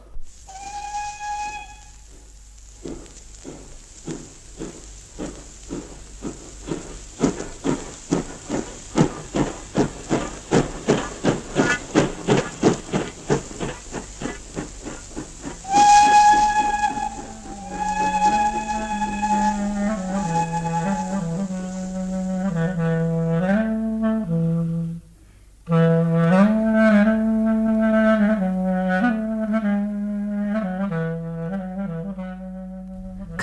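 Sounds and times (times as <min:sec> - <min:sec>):
steam locomotive whistle: 0:00.5 - 0:02.3, 0:15.6 - 0:25.0, 0:25.7 - 0:33.4
steam locomotive chuffing pulling away from station: 0:00.5 - 0:23.2.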